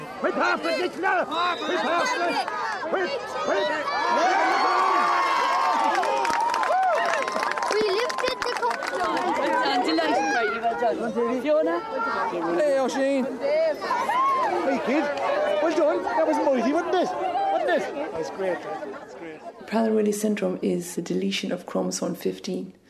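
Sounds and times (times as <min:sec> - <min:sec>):
large community crowd shouting and cheering at a county final: 0:00.0 - 0:19.7
speech: 0:00.2 - 0:04.8, 0:07.8 - 0:22.8
excited yells: 0:01.3 - 0:08.9, 0:13.7 - 0:17.9
scattered claps: 0:05.2 - 0:10.2
laughter: 0:08.6 - 0:11.4, 0:14.2 - 0:19.7.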